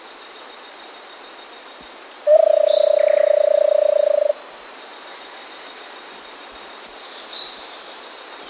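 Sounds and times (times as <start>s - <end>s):
constant high insect-like hum: 0.1s - 8.4s
versicolored barbet song in South America: 2.3s - 4.4s.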